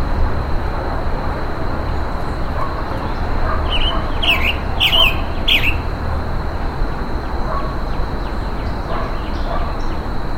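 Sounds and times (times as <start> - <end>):
low noise: 0.0 - 10.3
steady high-pitched whine: 0.0 - 10.3
faint scattered bird notes: 1.7 - 10.3
Roadside Hawk harsh buzzy calls while being mobbed in humid tropical forest: 3.4 - 5.8.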